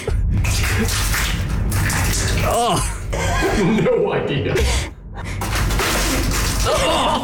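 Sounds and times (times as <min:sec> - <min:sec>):
wet liquid sloshing and splashing with dripping: 0:00.0 - 0:03.2, 0:05.2 - 0:07.2
speech: 0:00.8 - 0:01.2, 0:02.5 - 0:03.0, 0:03.6 - 0:05.4.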